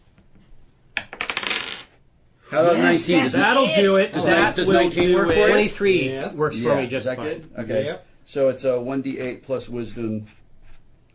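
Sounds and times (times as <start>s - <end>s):
dice clattering on a hard table: 1.0s - 2.0s
speech: 2.5s - 10.4s.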